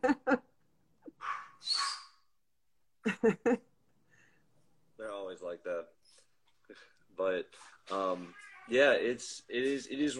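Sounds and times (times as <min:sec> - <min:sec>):
puppy yipping and whining: 0:01.2 - 0:02.2
speech: 0:03.2 - 0:03.7, 0:07.3 - 0:10.1.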